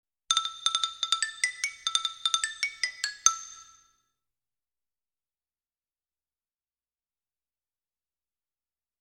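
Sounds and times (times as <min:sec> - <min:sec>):
xylophone melody: 0:00.3 - 0:03.9.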